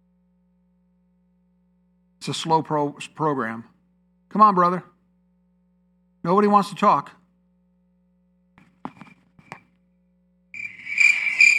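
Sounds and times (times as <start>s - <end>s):
speech: 2.3s - 3.7s, 4.3s - 4.9s, 6.2s - 7.2s
soft knocks and clicks: 8.6s - 9.7s
crickets chirping: 10.6s - 11.5s.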